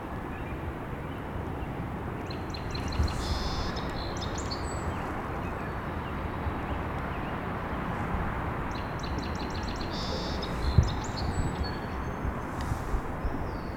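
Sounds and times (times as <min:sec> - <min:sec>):
broadband outdoor noise: 0:00.0 - 0:13.7
distant sandhill crane call: 0:02.4 - 0:06.5, 0:08.6 - 0:12.9.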